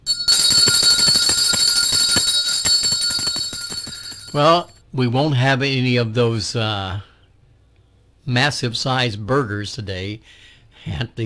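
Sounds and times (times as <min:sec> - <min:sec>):
loud lunch bell ringing rapidly: 0:00.0 - 0:04.7
speech: 0:04.4 - 0:07.1, 0:08.2 - 0:11.2.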